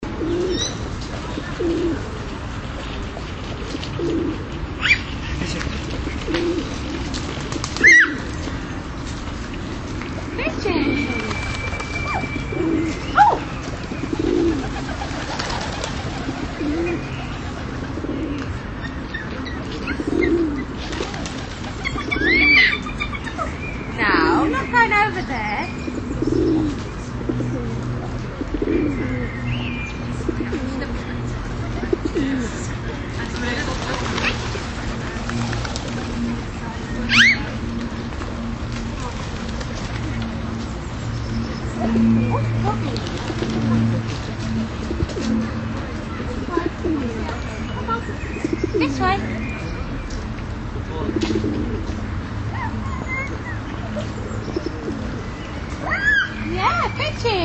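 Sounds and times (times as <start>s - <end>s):
pigeons in a park: 0.0s - 8.7s, 9.3s - 25.2s, 25.9s - 57.3s
child: 52.5s - 53.6s.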